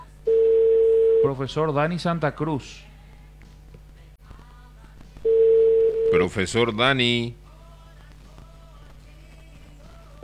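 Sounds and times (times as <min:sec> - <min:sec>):
telephone ringing tone of an outgoing call: 0:00.0 - 0:01.4, 0:05.3 - 0:06.5
speech: 0:01.2 - 0:02.9, 0:06.1 - 0:07.4.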